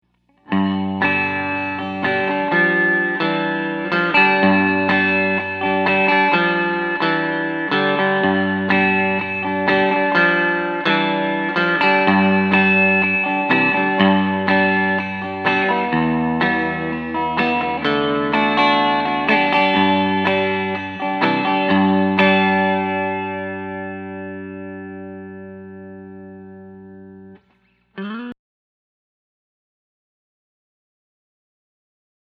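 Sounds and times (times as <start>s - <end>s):
electric guitars on both pickups: 0.3s - 28.4s.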